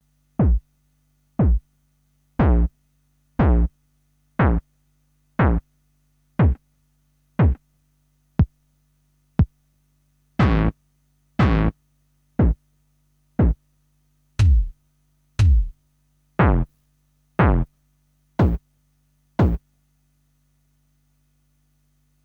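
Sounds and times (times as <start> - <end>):
kick drums: 0.4 - 0.7, 1.4 - 1.7, 2.4 - 2.7, 3.4 - 3.7, 4.4 - 4.7, 5.4 - 5.7, 6.4 - 6.6, 7.4 - 7.6, 8.4 - 8.6, 9.4 - 9.6, 10.4 - 10.8, 11.4 - 11.7, 12.4 - 12.6, 13.4 - 13.6, 14.4 - 14.8, 15.4 - 15.8, 16.4 - 16.7, 17.4 - 17.7, 18.4 - 18.7, 19.4 - 19.7.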